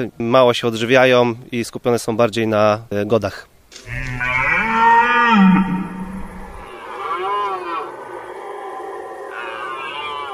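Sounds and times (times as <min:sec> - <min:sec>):
speech: 0:00.0 - 0:04.1
red deer roaring during the rut: 0:03.8 - 0:10.3.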